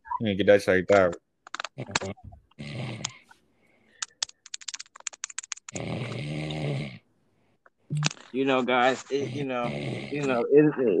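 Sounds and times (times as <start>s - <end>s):
speech: 0.2s - 1.2s, 1.8s - 2.7s, 8.4s - 10.9s
person snoring loudly and raspily: 5.8s - 7.0s, 9.1s - 10.5s.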